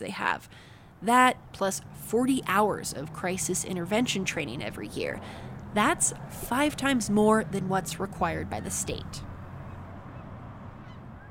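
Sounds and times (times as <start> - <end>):
speech: 0.0 - 9.3
low outdoor rumble: 0.0 - 11.2
Canada geese honking overhead: 6.6 - 11.2.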